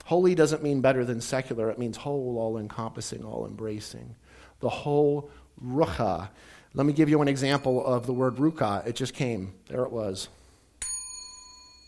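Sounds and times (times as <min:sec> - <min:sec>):
speech: 0:00.1 - 0:10.4
bell being struck: 0:07.3 - 0:09.4, 0:10.8 - 0:11.8.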